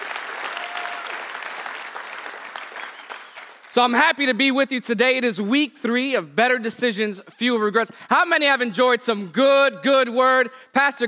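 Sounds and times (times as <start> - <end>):
audience applause: 0.0 - 3.7
speech: 3.7 - 11.0.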